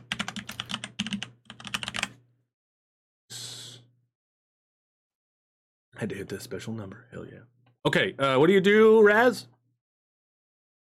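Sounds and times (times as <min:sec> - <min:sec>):
typing notes on a computer keyboard during a tabletop role-playing game: 0:00.0 - 0:02.2
speech: 0:06.0 - 0:09.6.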